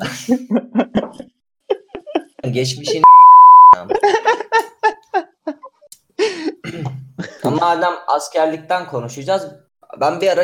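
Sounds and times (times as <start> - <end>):
speech: 0.0 - 1.0, 2.5 - 3.2, 7.6 - 10.4
people giggling: 0.0 - 3.0, 3.8 - 5.9
censor bleep pure tone: 3.0 - 3.8.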